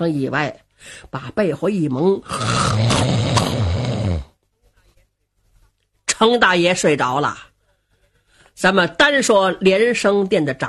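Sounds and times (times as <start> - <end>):
speech: 0.0 - 3.5, 6.2 - 7.5, 8.6 - 10.6
storyteller imitating loud snoring: 2.2 - 4.4.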